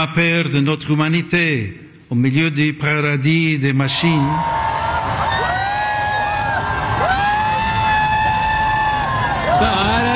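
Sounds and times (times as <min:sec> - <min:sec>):
speech: 0:00.0 - 0:04.6
thousands of people cheering and shouting along the streets of Paris: 0:03.9 - 0:10.1.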